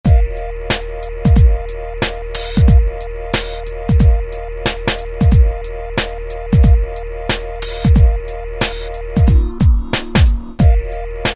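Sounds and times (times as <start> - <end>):
drum kit from an E-mu PK-6: 0.0 - 11.3.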